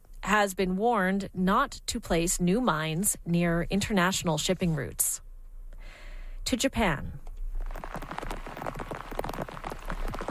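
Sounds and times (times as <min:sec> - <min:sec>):
speech: 0:00.3 - 0:05.2, 0:06.4 - 0:07.2
heavy rain falling on Japan's western coast: 0:07.7 - 0:10.2.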